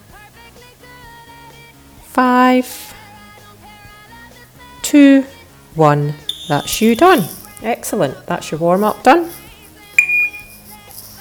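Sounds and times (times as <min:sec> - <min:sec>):
speech: 0:02.2 - 0:03.0, 0:04.9 - 0:09.4
short high-pitched electronic timer beep as timer is paused during workout warm-up: 0:06.2 - 0:07.6, 0:10.0 - 0:10.7.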